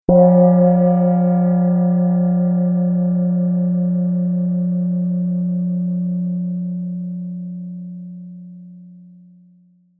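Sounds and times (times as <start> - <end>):
small gong: 0.1 - 9.9.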